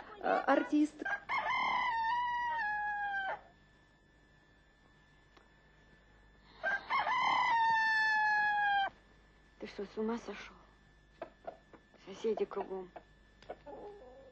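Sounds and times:
speech: 0.2 - 1.3, 9.8 - 10.6, 12.1 - 13.0
person imitating rooster crows: 1.0 - 3.5, 6.6 - 8.9.

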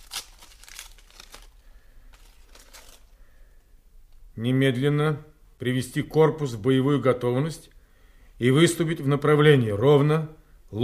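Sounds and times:
sealed paper envelope of military orders being torn open: 0.0 - 3.1
speech: 4.4 - 7.7, 8.4 - 10.8.

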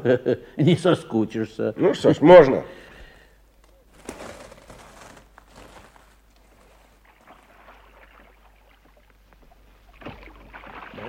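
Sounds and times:
speech: 0.0 - 2.9
oars dipping and splashing as a small boat is rowed across a lake: 3.9 - 11.0
soft wash of lapping lake water: 4.0 - 11.0.

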